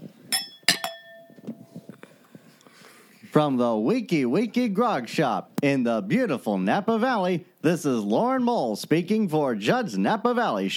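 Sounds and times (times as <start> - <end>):
glasses clinking in a toast: 0.3 - 1.7
speech: 3.3 - 10.7.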